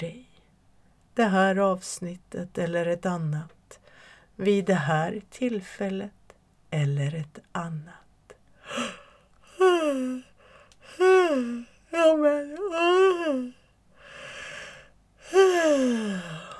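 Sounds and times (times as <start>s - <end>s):
speech: 1.2s - 3.6s, 4.4s - 8.0s, 9.8s - 10.3s, 11.0s - 13.6s, 15.3s - 16.5s
person yawning with a long sighing exhale: 8.7s - 16.5s.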